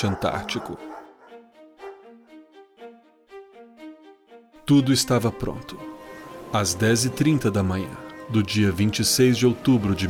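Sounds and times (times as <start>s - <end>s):
speech: 0.0s - 0.9s, 4.7s - 10.0s
sled dogs whining: 0.0s - 1.4s
pack of sled dogs from Canada barking and yipping aboard a ship in Buenos Aires: 0.0s - 2.0s.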